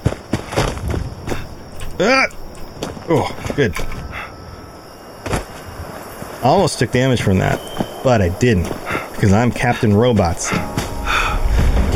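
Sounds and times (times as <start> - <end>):
video game character footfalls and landings jumping down ledges: 0.0 - 3.7, 5.2 - 6.4, 7.4 - 11.8
speech: 2.0 - 2.4, 3.1 - 3.9, 6.4 - 10.8.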